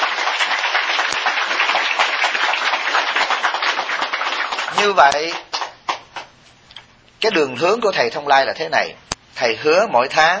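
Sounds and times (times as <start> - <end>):
crowd applauding: 0.0 - 6.3
speech: 4.8 - 5.4, 7.2 - 10.3.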